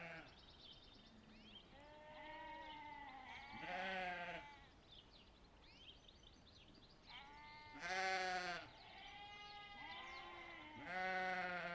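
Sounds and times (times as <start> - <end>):
ewes and lambs bleating in a small valley in lambing season: 0.0 - 0.3, 1.8 - 4.7, 7.1 - 11.7
outdoor noise on a gusty day: 0.0 - 11.7.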